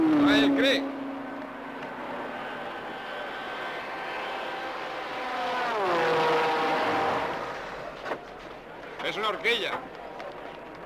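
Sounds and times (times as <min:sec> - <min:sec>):
high-revving race car engine roaring past: 0:00.0 - 0:08.2
speech: 0:00.4 - 0:01.0, 0:09.3 - 0:10.0.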